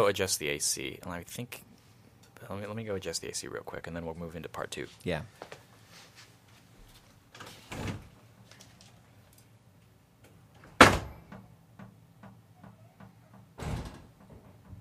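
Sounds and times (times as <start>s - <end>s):
speech: 0.0s - 1.7s, 2.4s - 5.6s
quiet room hum: 0.0s - 14.7s
doors slamming shut: 10.6s - 11.4s, 12.6s - 14.7s.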